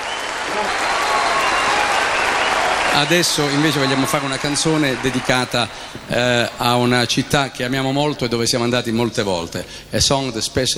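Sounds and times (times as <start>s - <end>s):
audience applause in a concert hall: 0.0s - 7.5s
speech: 0.6s - 1.0s, 3.0s - 10.7s.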